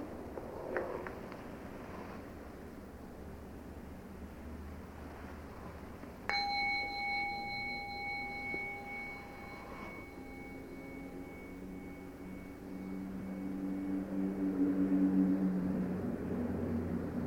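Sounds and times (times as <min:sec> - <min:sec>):
steady low rumbling background: 0:00.0 - 0:17.2
single bell struck and ringing: 0:06.3 - 0:14.6.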